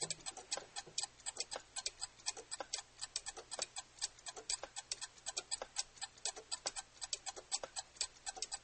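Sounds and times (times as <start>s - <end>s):
pocket watch ticking: 0.0s - 8.6s.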